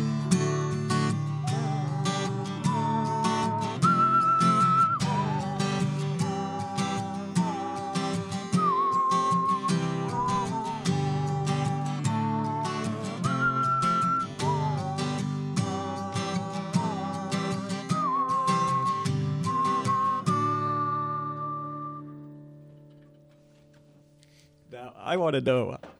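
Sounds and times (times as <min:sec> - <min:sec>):
whistled melody: 0:00.0 - 0:22.7
strummed acoustic guitar accompaniment: 0:00.0 - 0:24.8
speech: 0:25.2 - 0:25.8.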